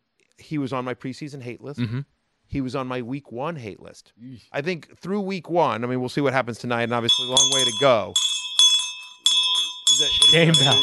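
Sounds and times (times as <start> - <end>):
speech: 0.4 - 8.3, 10.0 - 10.8
hand bell rung as a shame call: 6.9 - 10.8.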